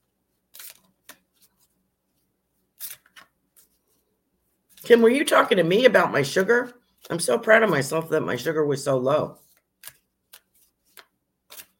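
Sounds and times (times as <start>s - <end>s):
cards pulled from a deck during a psychic card reading: 0.5s - 1.7s, 2.8s - 4.0s, 9.4s - 11.7s
speech: 4.9s - 9.4s.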